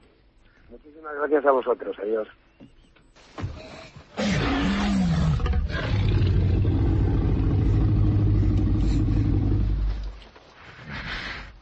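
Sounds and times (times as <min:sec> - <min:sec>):
speech: 0:00.7 - 0:02.7
dinosaur monster roar sound effect: 0:04.2 - 0:09.9.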